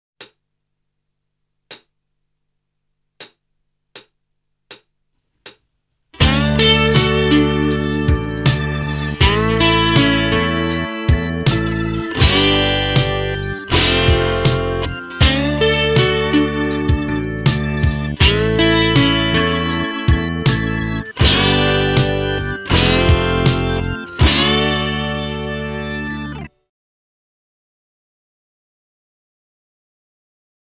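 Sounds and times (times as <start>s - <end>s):
slide guitar: 6.2s - 26.5s.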